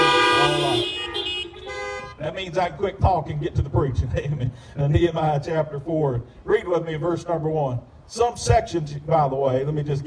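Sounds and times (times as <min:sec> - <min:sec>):
car horns honking as an amen during a church sermon: 0:00.0 - 0:02.4
speech: 0:02.4 - 0:10.0.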